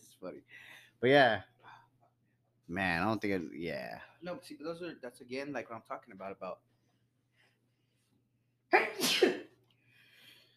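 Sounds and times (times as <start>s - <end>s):
speech: 1.0s - 1.5s, 2.7s - 6.7s
person sneezing: 8.7s - 9.6s.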